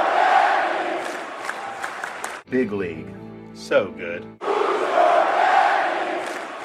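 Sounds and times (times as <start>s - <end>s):
rally crowd chanting slogans: 0.0s - 2.3s, 4.4s - 6.6s
speech: 2.5s - 4.5s.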